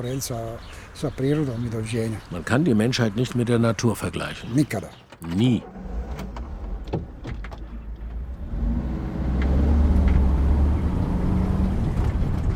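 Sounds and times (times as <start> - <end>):
speech: 0.0 - 5.9
bus engine rumbling inside a moving bus: 0.0 - 12.5
light rattles and clicks inside a moving bus: 4.5 - 8.5.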